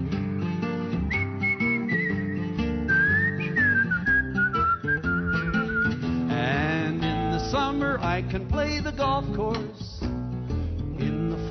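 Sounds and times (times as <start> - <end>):
steady backing music: 0.0 - 11.4
whistled melody with bending pitch: 1.0 - 6.2
speech: 8.2 - 9.9.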